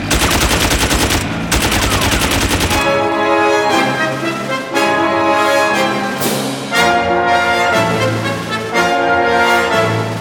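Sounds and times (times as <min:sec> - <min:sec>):
rapid machine gun fire: 0:00.0 - 0:03.3
sustained orchestral music: 0:01.8 - 0:10.1.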